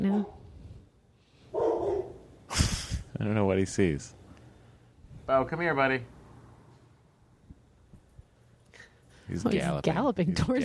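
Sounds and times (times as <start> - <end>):
drawn-out dog bark: 0.0 - 0.4, 1.5 - 2.3
speech: 0.1 - 0.4, 3.2 - 4.2, 5.3 - 6.2, 9.3 - 10.6.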